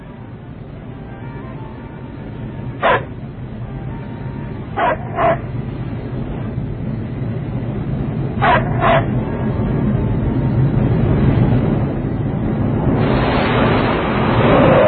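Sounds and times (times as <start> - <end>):
steady low rumbling background: 0.0 - 14.8
dog barking: 2.8 - 3.1, 4.8 - 5.4, 8.4 - 9.1.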